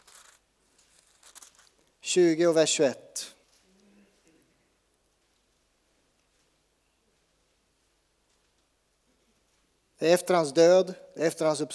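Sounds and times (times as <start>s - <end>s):
paper pages of a book being turned: 0.0s - 1.8s
quiet paper crinkling: 0.0s - 2.0s, 5.1s - 9.8s
speech: 2.1s - 3.3s, 10.0s - 11.7s.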